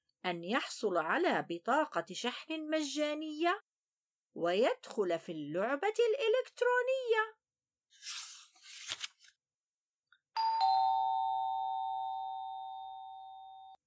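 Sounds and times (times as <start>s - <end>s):
speech: 0.2s - 3.7s, 4.4s - 8.2s
rustling or crunching noises: 8.0s - 9.3s
doorbell ringing with a bright electronic chime: 10.4s - 13.8s.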